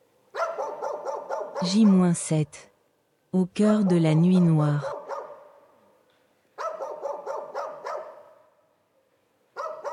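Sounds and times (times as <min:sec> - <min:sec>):
wild dogs barking: 0:00.3 - 0:02.1, 0:04.8 - 0:05.6, 0:06.6 - 0:08.4, 0:09.6 - 0:09.9
speech: 0:01.6 - 0:02.7, 0:03.3 - 0:05.0.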